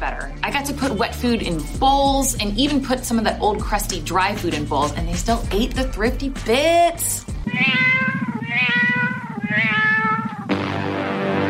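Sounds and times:
speech: 0.0 - 8.7
cat meowing: 7.4 - 10.5.

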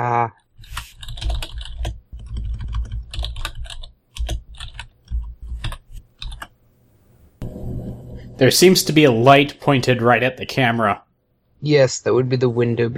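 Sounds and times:
fingers typing on a computer keyboard: 0.6 - 6.6
speech: 8.4 - 11.0, 11.6 - 12.9.

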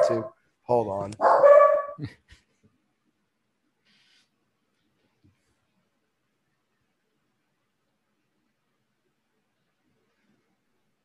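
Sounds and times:
dog barking: 0.0 - 0.4, 1.2 - 2.0
speech: 0.1 - 2.4.

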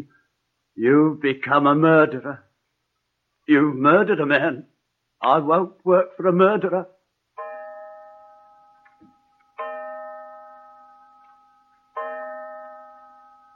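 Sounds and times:
speech: 0.8 - 2.5, 3.5 - 7.0
clock striking resonant chimes: 7.4 - 13.5.

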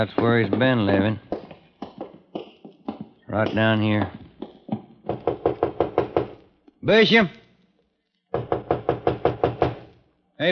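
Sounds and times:
speech: 0.0 - 1.3, 3.3 - 4.2, 6.8 - 7.4
rapid firm knocking on a locked door: 0.0 - 6.4, 8.3 - 9.9.

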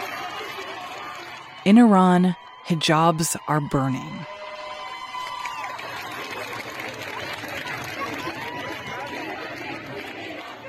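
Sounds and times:
speech: 1.6 - 4.3
large crowd of women protesting and chanting outdoors: 8.4 - 10.6.

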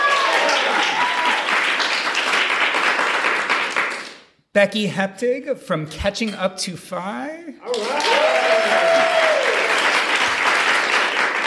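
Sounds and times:
people cheering and whooping: 0.0 - 1.6, 7.6 - 9.9
live crowd applauding at a financial independence event: 0.0 - 4.3, 7.6 - 11.4
speech: 4.5 - 9.3.

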